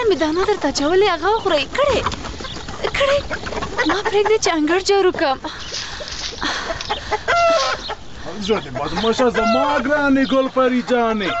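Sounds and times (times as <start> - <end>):
chickens clucking in a yard: 0.0 - 11.3
speech: 0.1 - 2.2, 2.8 - 5.8, 8.4 - 11.3
chicken drawn-out harmonic call: 1.4 - 4.6, 5.6 - 11.3.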